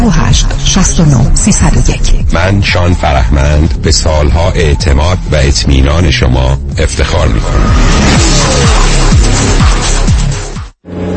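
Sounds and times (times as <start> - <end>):
car engine revving while running a red light: 0.0 - 11.1
speech: 0.8 - 8.8
car crashing: 7.4 - 10.1.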